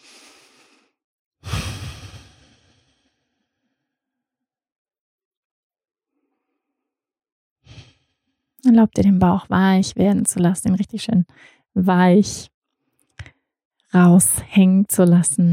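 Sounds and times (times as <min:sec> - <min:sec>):
deep breath drawn into a full belly in a relaxation exercise: 0:00.0 - 0:04.0, 0:07.7 - 0:08.4, 0:11.3 - 0:11.7
speech: 0:08.6 - 0:12.5, 0:13.9 - 0:15.5.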